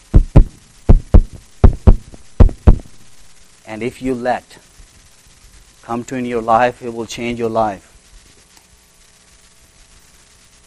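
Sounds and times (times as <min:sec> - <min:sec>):
solid knocking on a door: 0:00.2 - 0:02.9
speech: 0:03.7 - 0:04.6, 0:05.9 - 0:07.9.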